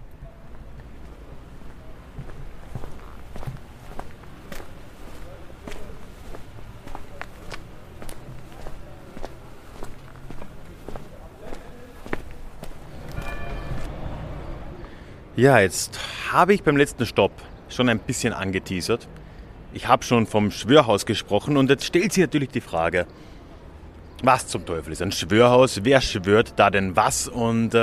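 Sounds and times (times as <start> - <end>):
footsteps of a person walking through a town toward the town hall square: 0.5 - 13.9
speech: 15.4 - 23.3, 24.2 - 27.8.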